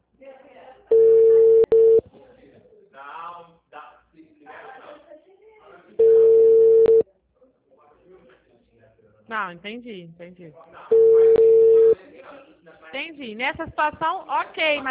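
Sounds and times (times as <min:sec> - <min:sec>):
people talking quietly: 0:00.2 - 0:14.8
outgoing telephone call ringing tone: 0:00.9 - 0:02.0, 0:06.0 - 0:07.0, 0:10.9 - 0:12.0
speech: 0:09.3 - 0:11.6, 0:12.9 - 0:14.8.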